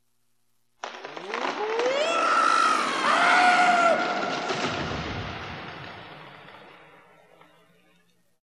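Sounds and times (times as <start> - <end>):
people screaming on a theme park drop ride: 1.6 - 4.3.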